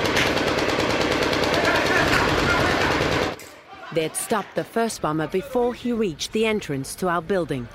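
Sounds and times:
dense gunfire from many weapons: 0.0 - 3.4
speech: 4.0 - 7.7.

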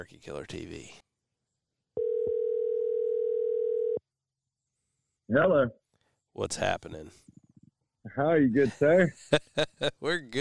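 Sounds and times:
speech: 0.0 - 1.1, 5.3 - 5.8, 6.4 - 7.4, 8.1 - 10.3
telephone dial tone while a call is being placed: 2.0 - 4.0
laughter: 8.6 - 10.3.

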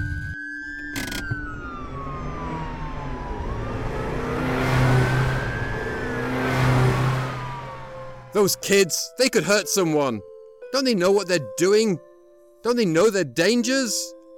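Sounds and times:
police siren wailing: 0.0 - 9.1
car revving and speeding off fast: 1.4 - 8.7
speech: 8.4 - 14.2.

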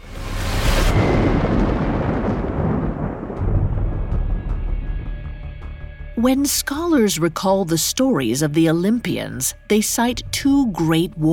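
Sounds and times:
thunder cracking and rumbling in a thunderstorm: 0.0 - 5.8
speech: 6.2 - 11.3.

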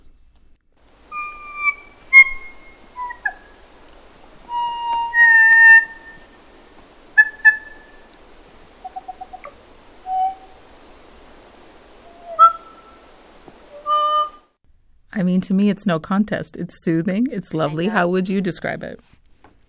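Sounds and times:
kokako song: 1.1 - 3.6, 4.5 - 6.4, 7.2 - 8.1, 8.8 - 10.6, 12.0 - 13.0
speech: 15.2 - 19.1.

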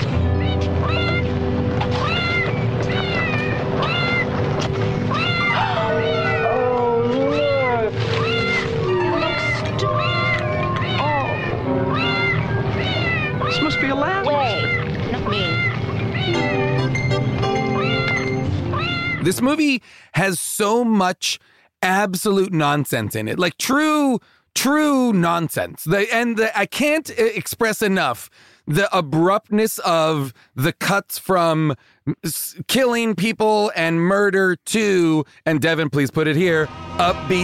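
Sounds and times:
music with low sustained tones: 0.0 - 19.2, 36.4 - 37.4
cat meows in a rapid montage: 1.9 - 4.3, 5.1 - 17.0, 17.7 - 19.2
speech: 19.3 - 37.4.

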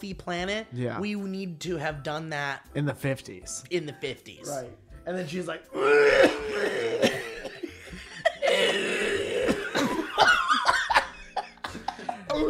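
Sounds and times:
speech: 0.0 - 7.2
person coughing theatrically imitating a character's speech: 5.8 - 11.0
laughter: 6.3 - 12.4.

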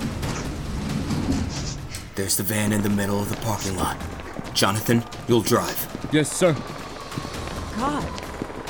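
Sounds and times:
door sliding open with low mechanical rumble: 0.1 - 2.1
speech: 2.2 - 6.8, 7.8 - 8.2.

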